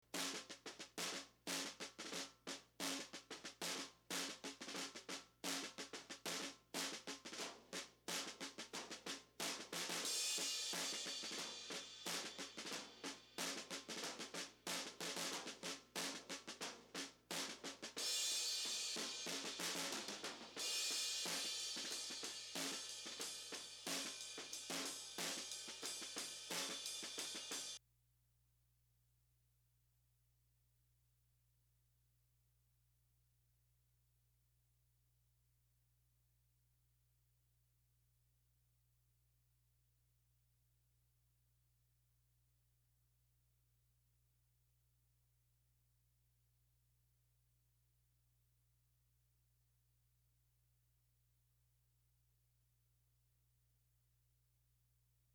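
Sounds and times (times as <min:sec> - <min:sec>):
distorted snare drum: 0:00.0 - 0:27.8.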